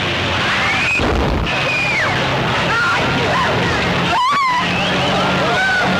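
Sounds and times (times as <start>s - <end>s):
crowd noise: 0.0s - 5.9s
race car engines roaring: 0.0s - 5.9s
race car tires squealing: 0.3s - 5.9s
race car crashing impacts: 1.0s - 1.6s.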